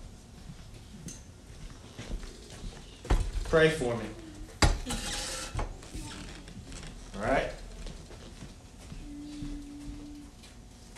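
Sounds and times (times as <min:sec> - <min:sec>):
speech: 0:03.5 - 0:04.2, 0:07.2 - 0:07.4
chairs clattering and scraping as they are moved into place: 0:04.6 - 0:08.6.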